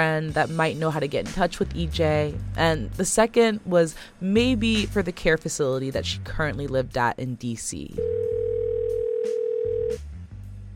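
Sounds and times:
speech: 0.0s - 8.4s
steady telephone line tone: 8.0s - 10.0s.

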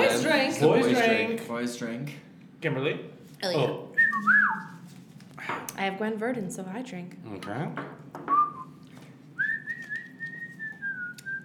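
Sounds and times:
speech: 0.4s - 4.8s, 5.4s - 8.4s
person whistling a show tune melody: 4.0s - 4.8s, 8.3s - 8.8s, 9.4s - 11.4s.

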